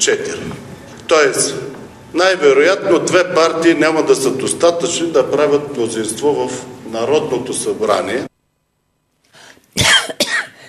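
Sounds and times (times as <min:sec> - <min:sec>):
speech: 0:00.0 - 0:08.3
person coughing harshly: 0:09.8 - 0:10.6.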